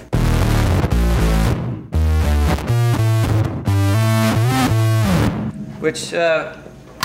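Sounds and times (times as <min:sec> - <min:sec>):
distorted bass synth riff: 0:00.0 - 0:05.5
speech: 0:05.8 - 0:06.6.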